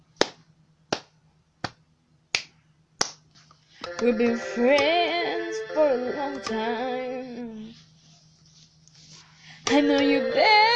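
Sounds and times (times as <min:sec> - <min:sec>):
light hand clapping: 0:00.2 - 0:03.2
speech: 0:04.0 - 0:07.8, 0:09.7 - 0:10.7.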